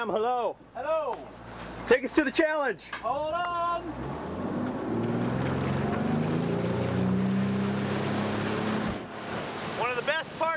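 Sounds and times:
speech: 0:00.0 - 0:04.2
boat engine droning: 0:03.7 - 0:10.5
rushing water from the hull cutting through waves: 0:03.7 - 0:10.5.

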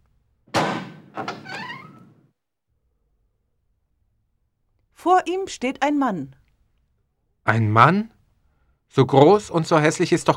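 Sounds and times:
door unlatching thunk: 0:00.5 - 0:02.2
speech: 0:01.2 - 0:01.4, 0:05.0 - 0:06.4, 0:07.5 - 0:08.2, 0:08.9 - 0:10.3.

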